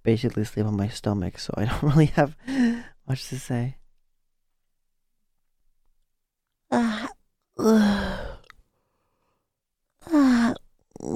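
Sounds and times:
speech: 0.0s - 3.8s, 7.6s - 8.3s
person yawning: 6.7s - 8.6s, 10.0s - 11.1s.

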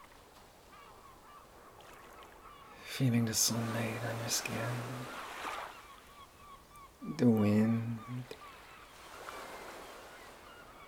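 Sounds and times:
steady wash of sea surf: 1.5s - 6.2s, 7.2s - 10.8s
speech: 3.0s - 5.2s, 7.0s - 8.4s.

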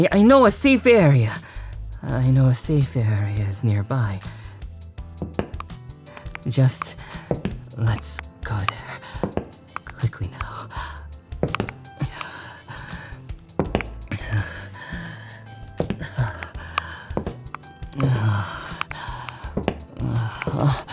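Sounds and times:
speech: 0.0s - 1.4s, 2.0s - 4.4s, 6.4s - 9.0s, 10.0s - 11.6s
heavy ragged breathing with sharp gasps: 4.3s - 4.7s, 6.1s - 7.5s, 8.8s - 9.5s, 10.4s - 11.2s, 11.8s - 13.5s, 14.1s - 20.9s
soft thumps: 5.2s - 5.6s, 13.6s - 14.1s, 15.8s - 17.5s, 19.6s - 19.9s.

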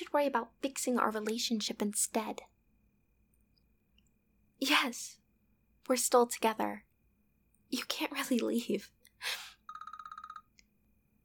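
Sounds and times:
speech: 0.1s - 2.5s, 4.6s - 5.2s, 5.9s - 6.9s, 7.7s - 9.4s
phone ringtone rapid electronic trill: 9.7s - 10.5s.

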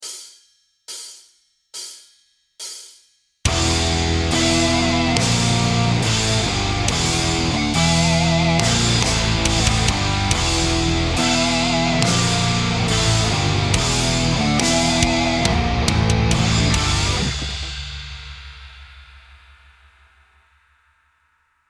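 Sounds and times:
blues riff: 3.5s - 18.0s.

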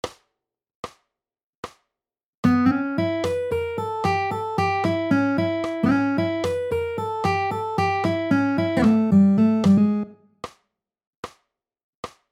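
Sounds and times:
blues guitar lick: 2.4s - 10.2s.

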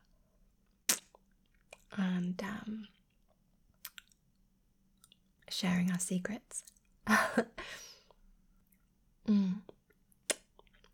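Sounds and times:
person chewing and swallowing a lolly: 0.8s - 2.0s, 2.9s - 4.4s, 9.6s - 10.9s
speech: 1.9s - 3.0s, 5.6s - 7.9s, 9.3s - 9.7s.

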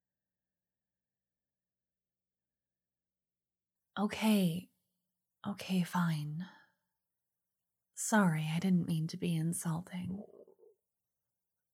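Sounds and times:
speech: 4.0s - 4.7s, 5.4s - 6.6s, 8.0s - 10.4s
hungry stomach gurgling rumble: 10.1s - 10.8s.

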